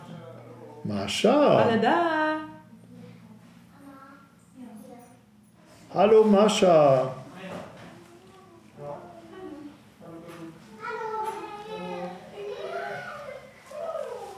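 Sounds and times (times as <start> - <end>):
speech: 0.8 - 2.5, 5.9 - 7.2
children chattering and shouting happily while playing: 2.5 - 5.3, 7.8 - 14.3.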